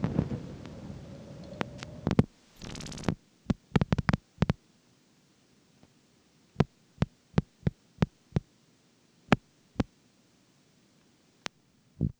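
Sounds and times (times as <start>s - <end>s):
clicks: 1.4s - 4.6s, 6.6s - 8.4s
electronic blips: 2.0s - 4.6s.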